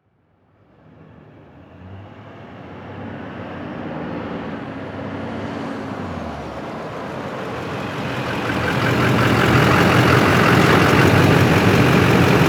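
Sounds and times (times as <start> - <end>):
diesel truck engine revving up and shutting off: 7.0 - 12.4.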